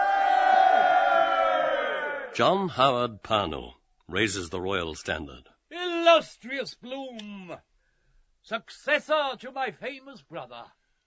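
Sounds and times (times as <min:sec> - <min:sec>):
dense crowd cheering and shouting: 0:00.0 - 0:02.4
speech: 0:02.4 - 0:07.7, 0:08.4 - 0:10.8.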